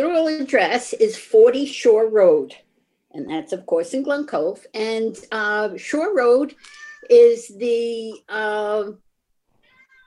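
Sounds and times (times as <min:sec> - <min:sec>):
speech: 0:00.0 - 0:09.0
cat meowing to be let out: 0:06.6 - 0:07.1, 0:09.6 - 0:10.0.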